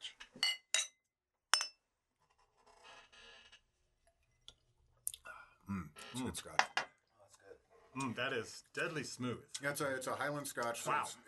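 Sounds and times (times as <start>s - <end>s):
glasses clinking in a toast: 0.4s - 1.8s
speech: 6.2s - 6.8s, 8.0s - 11.2s.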